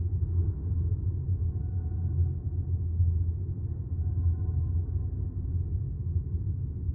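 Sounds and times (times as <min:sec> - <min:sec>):
wind in a mine: 0:00.0 - 0:06.9.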